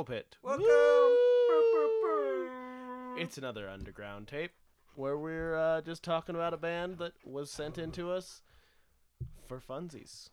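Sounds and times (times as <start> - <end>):
speech: 0.0 - 1.2, 3.2 - 8.6, 9.2 - 10.3
Australian Shepherd dog howling: 0.5 - 3.3.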